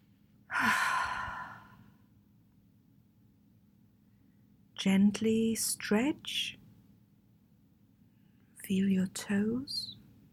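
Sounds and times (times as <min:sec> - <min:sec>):
long deep exhale during a guided relaxation exercise: 0:00.5 - 0:01.9
speech: 0:04.8 - 0:06.6, 0:08.7 - 0:10.0.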